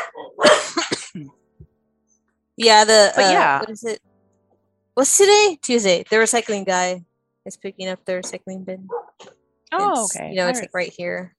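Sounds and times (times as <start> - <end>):
dogs barking: 0.0 - 0.8, 8.9 - 9.3
speech: 1.2 - 1.4, 2.6 - 4.1, 5.0 - 11.3.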